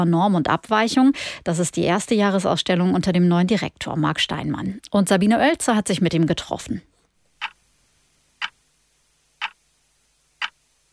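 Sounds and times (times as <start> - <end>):
speech: 0.0 - 6.9
wall clock ticking: 7.4 - 7.6, 8.4 - 8.6, 9.4 - 9.6, 10.4 - 10.6.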